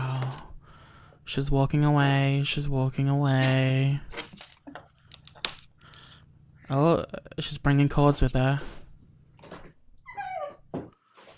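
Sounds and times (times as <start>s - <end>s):
speech: 1.3s - 4.2s, 6.7s - 8.8s
dog whimpering and yipping: 10.0s - 10.8s.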